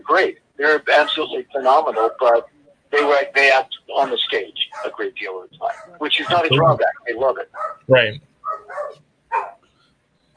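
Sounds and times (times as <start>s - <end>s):
speech: 0.1s - 9.5s
terrier and beagle mix dog barking: 4.7s - 5.0s, 5.6s - 6.6s, 7.5s - 9.6s.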